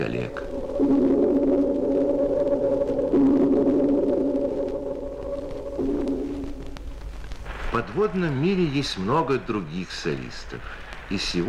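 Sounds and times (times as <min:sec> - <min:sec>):
speech: 0:00.0 - 0:01.1, 0:08.0 - 0:11.4
dolphin echolocation recorded underwater and slowed down: 0:00.0 - 0:07.5.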